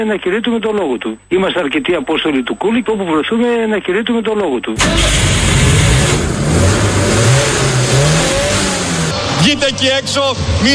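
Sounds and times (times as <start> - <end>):
speech: 0.0 - 7.2, 9.4 - 10.7
car engine revving: 4.8 - 10.7.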